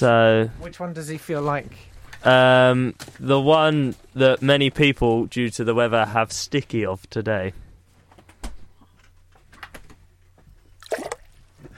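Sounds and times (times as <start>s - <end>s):
speech: 0.0s - 7.6s
soft liquid sound: 10.7s - 11.7s
mouthful of drinking water splashing back into a glass: 10.8s - 11.3s.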